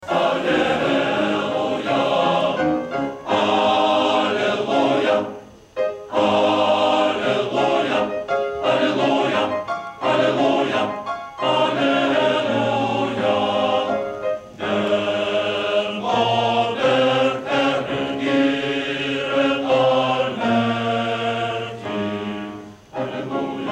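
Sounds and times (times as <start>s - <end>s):
male choir singing: 0.0s - 5.5s, 6.1s - 23.7s.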